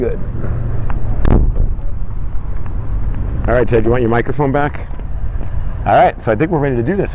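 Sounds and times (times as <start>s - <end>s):
steady low rumble of traffic: 0.0s - 7.1s
wind buffeting the microphone in a parking lot: 0.0s - 7.1s
sharp thud: 1.2s - 1.8s
speech: 3.5s - 5.0s, 5.8s - 7.1s.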